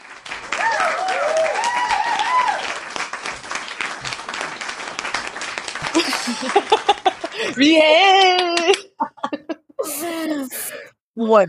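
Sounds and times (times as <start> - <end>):
group applauding: 0.0 - 8.9
excited people cheering: 0.0 - 10.3
laughter: 5.8 - 10.6
speech: 6.3 - 6.6, 7.5 - 8.8, 11.2 - 11.4.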